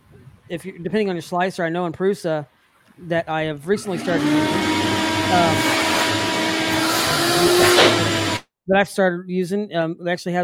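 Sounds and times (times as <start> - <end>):
speech: 0.5 - 5.8, 8.7 - 10.4
vacuum cleaner running: 3.8 - 8.4.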